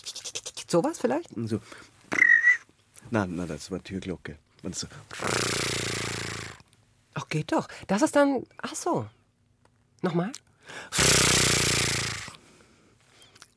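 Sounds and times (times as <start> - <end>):
voice imitating a fishing reel whirring: 0.0 - 0.8, 5.2 - 6.6, 11.0 - 12.4
speech: 0.7 - 2.0, 3.1 - 5.7, 7.3 - 9.2, 10.0 - 11.2
short softer breath: 12.3 - 13.4.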